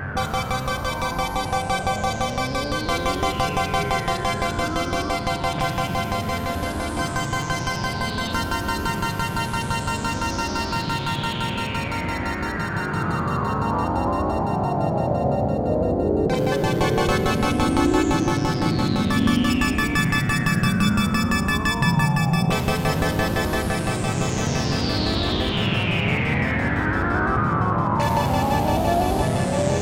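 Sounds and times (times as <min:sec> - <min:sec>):
Oberheim OB-8 synthesizer quantized LFO pulse width modulation: 0:00.2 - 0:29.8.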